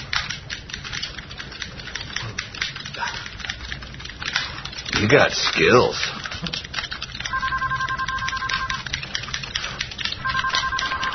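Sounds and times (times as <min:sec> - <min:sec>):
clicking and rustling noise: 0:00.0 - 0:11.1
speech: 0:05.0 - 0:06.6
telephone ringing in electronic double tones: 0:07.3 - 0:08.9, 0:10.2 - 0:11.1.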